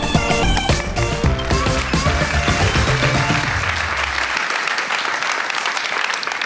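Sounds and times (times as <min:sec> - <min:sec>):
music playing: 0:00.0 - 0:04.3
loud dense audience applause: 0:00.2 - 0:06.4.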